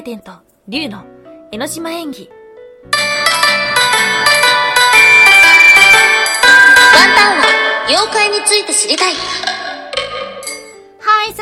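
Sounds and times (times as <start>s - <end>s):
speech: 0.0s - 3.2s, 7.3s - 9.6s
bright bell ringing: 3.0s - 8.8s, 10.1s - 10.8s.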